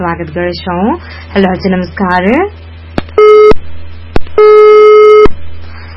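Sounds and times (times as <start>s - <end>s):
speech: 0.0s - 2.7s
telephone busy tone after a dropped call connection: 3.2s - 3.6s, 4.4s - 5.3s.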